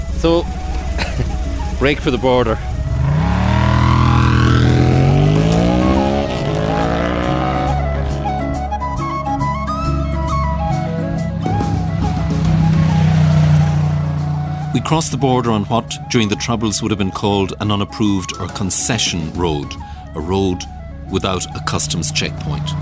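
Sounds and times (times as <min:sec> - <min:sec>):
motorcycle carrying two riders pulling away along a country back road in County Louth: 0:00.0 - 0:22.8
speech: 0:00.2 - 0:02.7, 0:14.9 - 0:22.8.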